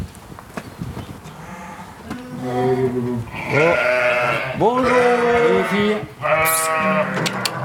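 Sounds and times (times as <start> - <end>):
speech: 2.4 - 7.4
ewes bleating in a barn: 3.3 - 7.6.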